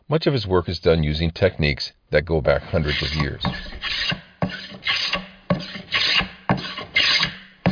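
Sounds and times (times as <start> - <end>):
speech: 0.1 - 4.2
hand tool rasping across wood for boat building: 2.7 - 7.6.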